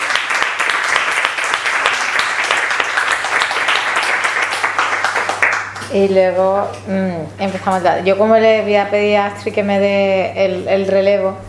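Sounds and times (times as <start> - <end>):
audience applause at a talk before a debate: 0.0 - 5.8
speech: 5.9 - 11.4.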